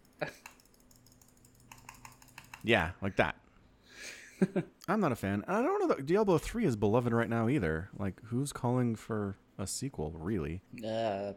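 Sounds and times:
computer mouse clicking: 0:00.0 - 0:02.7
quiet hum: 0:00.0 - 0:11.3
speech: 0:02.6 - 0:03.4, 0:04.0 - 0:11.3.

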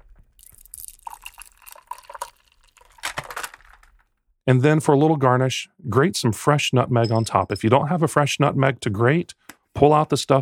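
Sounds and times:
frothy milk punch poured from a shaker into a rocks glass without ice: 0:00.4 - 0:03.8
speech: 0:04.5 - 0:10.3.

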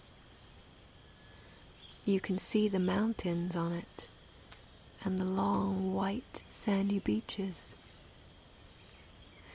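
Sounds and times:
crickets chirping: 0:00.0 - 0:09.5
speech: 0:02.1 - 0:04.1, 0:05.0 - 0:07.7.

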